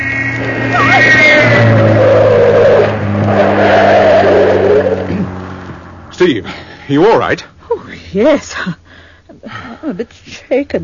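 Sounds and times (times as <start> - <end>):
sports car tyres squealing in a skid: 0.0 - 5.6
powerful sports car engine revving hard while roaring past: 0.0 - 7.0
speech: 6.2 - 7.5, 8.1 - 8.8, 9.4 - 10.8.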